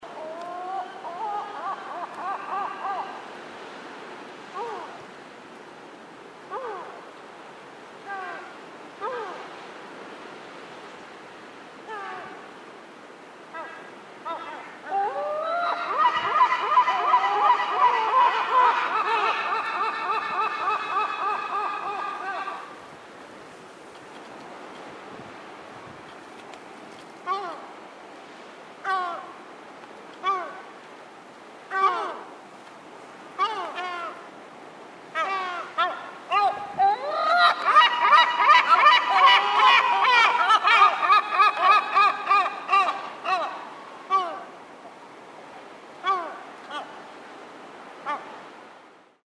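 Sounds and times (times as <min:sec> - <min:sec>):
herring gull calling: 0:00.1 - 0:03.3, 0:13.6 - 0:22.8, 0:31.7 - 0:32.2, 0:33.4 - 0:34.2, 0:35.2 - 0:44.5, 0:46.0 - 0:46.9.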